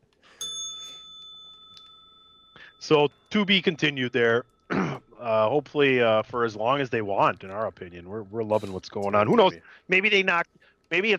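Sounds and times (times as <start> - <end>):
single bright bell strike: 0.4 - 4.6
speech: 2.8 - 11.1.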